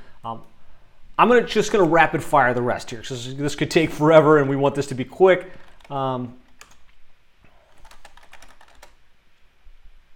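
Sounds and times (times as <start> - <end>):
speech: 0.2 - 0.6, 1.2 - 6.4
typing on a computer keyboard: 5.6 - 6.8, 7.7 - 9.0.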